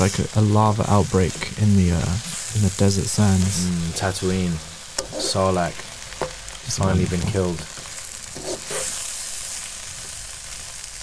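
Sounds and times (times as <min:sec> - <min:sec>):
speech: 0:00.0 - 0:05.9, 0:06.6 - 0:07.8
food frying in a pan: 0:00.0 - 0:11.0
knife stirring food in a frying pan: 0:05.0 - 0:06.4, 0:08.3 - 0:09.2.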